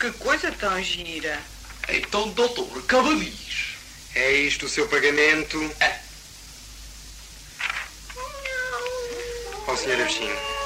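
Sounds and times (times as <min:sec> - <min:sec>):
speech: 0:00.0 - 0:03.6, 0:04.2 - 0:06.0, 0:09.8 - 0:10.6
low hum: 0:00.0 - 0:10.6
cats meowing: 0:08.1 - 0:10.6.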